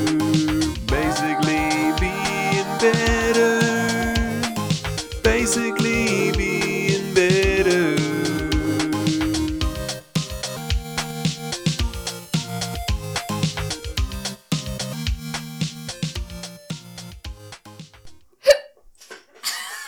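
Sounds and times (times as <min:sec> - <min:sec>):
upbeat music: 0:00.0 - 0:18.1
person hiccuping: 0:18.4 - 0:18.8.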